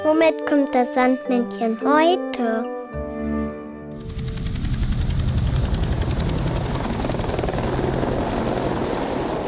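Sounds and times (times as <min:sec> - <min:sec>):
speech: 0:00.2 - 0:02.8
helicopter rotor chopping with engine whine: 0:04.0 - 0:09.4.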